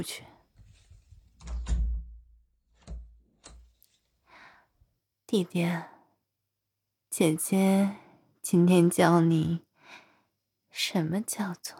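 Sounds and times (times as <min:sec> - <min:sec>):
speech: 0:00.0 - 0:00.3, 0:05.3 - 0:05.9, 0:07.1 - 0:09.6, 0:10.8 - 0:11.7
soft rustle: 0:00.6 - 0:01.4
door being shut and locked: 0:01.4 - 0:03.6.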